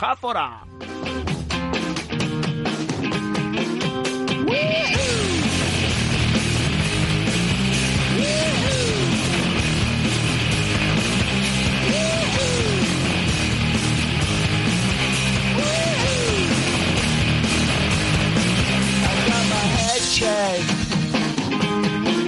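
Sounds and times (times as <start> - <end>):
speech: 0.0 - 0.9
loud driving rock song with full-band instrumentation: 0.6 - 22.2
yelled onomatopoeic war cry swooping upward in pitch: 4.4 - 5.6, 8.0 - 9.4, 11.7 - 13.1, 15.5 - 16.8.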